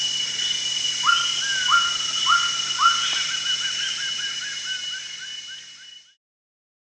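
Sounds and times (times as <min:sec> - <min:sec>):
steady insect buzzing at Danum: 0:00.0 - 0:06.2
Greater racket-tailed drongo calling soft repeated looping notes: 0:00.4 - 0:05.8
Greater racket-tailed drongo calling rising whistled notes at Danum: 0:01.0 - 0:04.0.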